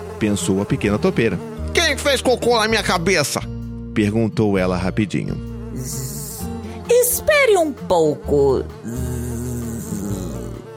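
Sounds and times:
two fat black flies buzzing: 0.0s - 1.8s, 5.5s - 7.0s, 8.8s - 10.7s
speech: 0.2s - 6.1s, 6.9s - 9.3s.

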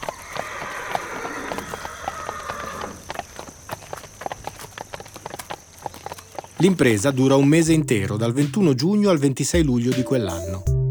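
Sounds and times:
horse hooves clip-clopping on secondary roads: 0.0s - 8.0s
speech: 6.6s - 10.7s.

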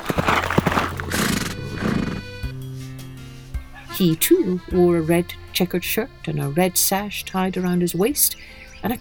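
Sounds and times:
horse whinnying: 0.0s - 1.4s
horse hooves pounding: 0.0s - 1.6s
speech: 4.0s - 8.9s.

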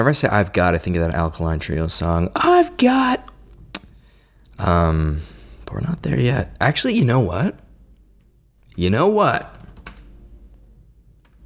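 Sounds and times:
speech: 0.0s - 3.3s, 4.6s - 7.6s, 8.8s - 9.5s
low steady hum: 0.0s - 11.4s
keystrokes on a computer keyboard: 9.6s - 10.1s.

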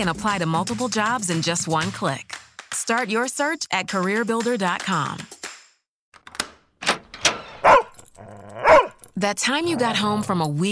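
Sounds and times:
speech: 0.0s - 5.4s, 9.2s - 10.7s
dog barking: 7.6s - 9.0s.

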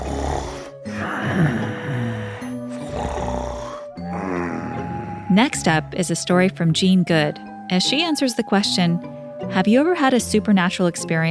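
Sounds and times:
loud rasping human snoring: 0.0s - 5.7s
speech: 5.4s - 11.2s.

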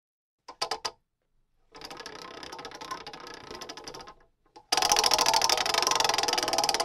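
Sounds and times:
prize wheel being spun with ratcheting clicks: 1.8s - 6.8s.

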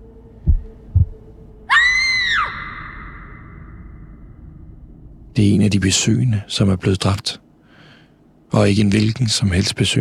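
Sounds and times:
low rumble: 0.0s - 1.7s, 2.4s - 6.5s
man's own heartbeat pounding: 0.4s - 1.2s
person screaming loudly: 1.7s - 3.4s
speech: 5.4s - 7.5s, 8.5s - 10.0s.

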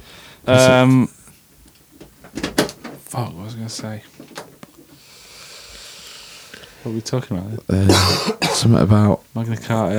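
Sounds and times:
speech: 0.4s - 1.2s, 3.1s - 4.2s, 6.8s - 9.9s
door swinging open with a loud drawn-out creak: 2.0s - 3.1s.

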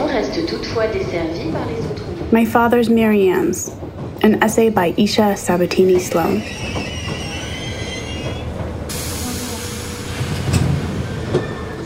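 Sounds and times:
subway train rumbling at a platform: 0.0s - 11.8s
speech: 0.2s - 7.0s
high metallic squeals of a subway train: 6.1s - 11.8s.

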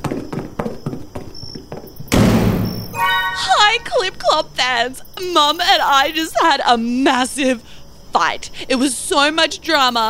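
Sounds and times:
running footsteps into a room: 0.0s - 2.2s
door slamming shut with a heavy bang: 2.1s - 3.5s
speech: 3.8s - 10.0s.

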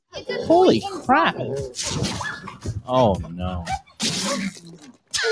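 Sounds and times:
speech: 0.5s - 2.1s, 2.9s - 3.7s
person sneezing: 4.0s - 5.3s.

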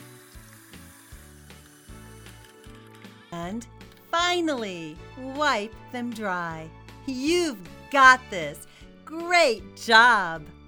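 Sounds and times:
water running from a tap while hands are rinsed: 0.0s - 2.3s
speech: 3.3s - 10.6s.

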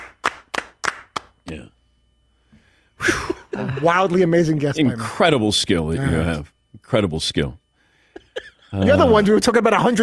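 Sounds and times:
slow sharp hand claps: 0.0s - 1.6s
speech: 1.5s - 1.8s, 3.0s - 7.6s, 8.4s - 10.0s.

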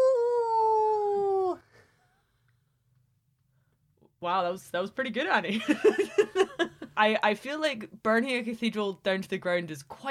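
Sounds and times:
person imitating a wolf howl: 0.0s - 1.6s
speech: 4.2s - 10.1s.

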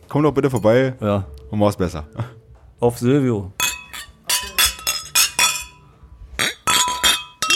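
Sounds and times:
speech: 0.1s - 3.6s
glasses clinking in a toast: 3.6s - 7.5s.

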